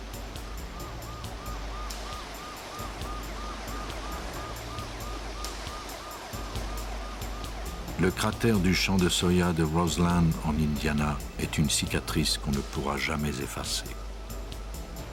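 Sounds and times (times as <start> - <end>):
steady dense rain at night: 0.0 - 11.4
siren warbling at night: 0.6 - 10.0
speech: 8.0 - 14.0.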